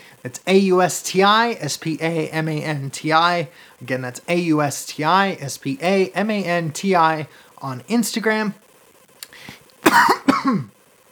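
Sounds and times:
speech: 0.2s - 8.6s, 9.8s - 10.8s
husky coughs: 9.9s - 10.7s.

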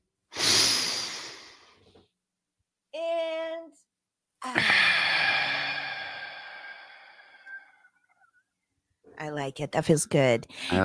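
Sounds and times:
deep breath in: 0.3s - 1.8s, 4.6s - 7.9s
speech: 9.5s - 10.8s.

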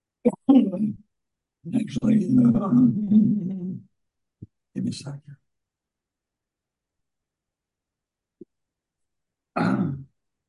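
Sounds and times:
speech: 0.2s - 3.5s, 4.8s - 5.4s
man with allergies clearing throat: 9.6s - 10.1s.

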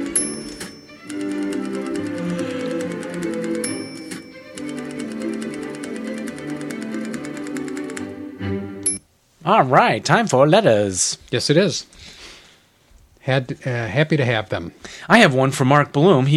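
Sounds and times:
computer keyboard keys clicking: 0.4s - 8.1s
speech: 9.5s - 11.9s, 13.3s - 16.3s.

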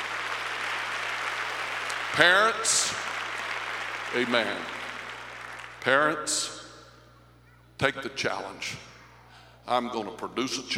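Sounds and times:
audience clapping: 0.0s - 6.6s
low electrical hum: 0.0s - 10.7s
speech: 2.2s - 3.2s, 4.1s - 4.7s, 5.8s - 6.6s, 7.8s - 8.9s, 9.6s - 10.7s.

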